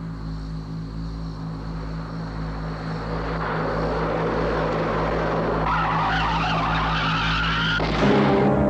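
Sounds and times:
car engine roaring: 0:00.0 - 0:08.6
car tire blowout: 0:02.5 - 0:08.6.

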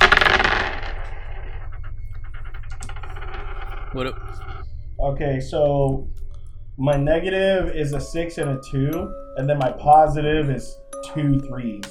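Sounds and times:
dice rolling and rattling on a table: 0:00.0 - 0:03.7
speech: 0:03.9 - 0:06.2, 0:06.8 - 0:11.8.

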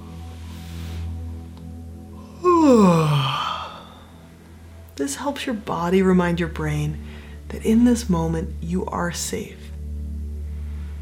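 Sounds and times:
person doing a faked big yawn as a calming exercise: 0:02.2 - 0:04.1
speech: 0:02.7 - 0:03.2, 0:05.0 - 0:09.7.

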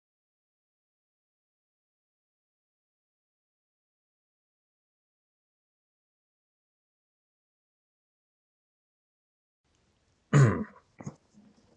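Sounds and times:
raspy guttural throat clearing: 0:10.3 - 0:11.2.

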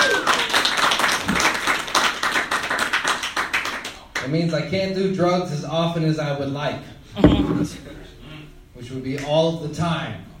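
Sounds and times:
crowd applauding: 0:00.0 - 0:04.0
speech: 0:04.3 - 0:08.1, 0:08.8 - 0:10.3.

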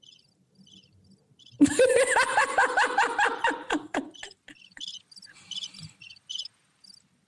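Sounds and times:
crickets chirping: 0:00.0 - 0:03.3, 0:04.1 - 0:07.2
snickering laughter: 0:01.6 - 0:04.8.

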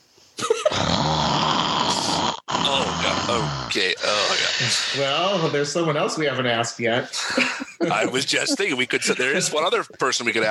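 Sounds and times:
loud rasping snore: 0:00.7 - 0:05.6
speech: 0:03.3 - 0:10.5
laughter: 0:07.1 - 0:10.5.

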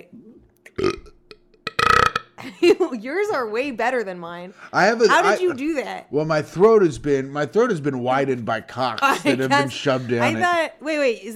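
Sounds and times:
loud burps on command: 0:00.7 - 0:02.4
speech: 0:02.6 - 0:11.3.

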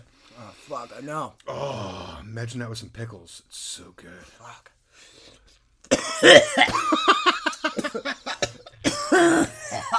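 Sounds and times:
speech: 0:00.7 - 0:05.3, 0:06.2 - 0:07.1, 0:07.7 - 0:08.4
person coughing: 0:05.9 - 0:07.0, 0:07.6 - 0:09.9.

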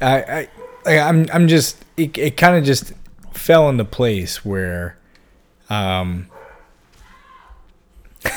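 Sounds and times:
speech: 0:00.0 - 0:05.0, 0:05.7 - 0:06.4
household dog barking: 0:00.5 - 0:00.9, 0:06.3 - 0:07.6.

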